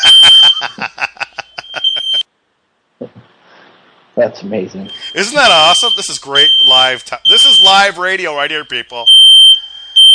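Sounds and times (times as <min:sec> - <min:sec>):
laughter: 0:00.0 - 0:02.2
plugged-in smoke detector alarm beeping in a room: 0:00.0 - 0:02.3, 0:04.9 - 0:10.1
speech: 0:04.2 - 0:09.2.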